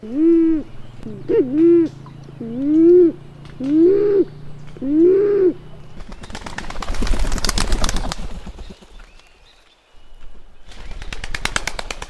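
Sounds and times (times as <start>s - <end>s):
band-tailed pigeon calling deep hooting two-part notes: 0.0s - 6.4s.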